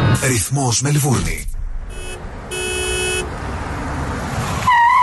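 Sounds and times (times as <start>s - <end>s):
road and engine rumble: 0.2s - 5.0s
speech: 0.6s - 1.5s
car horn honking: 1.9s - 3.4s.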